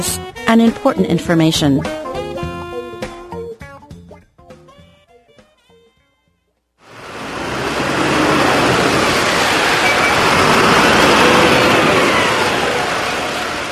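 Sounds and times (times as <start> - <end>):
speech: 0.0 - 2.0
bus engine rumbling while driving along a road: 6.9 - 13.7.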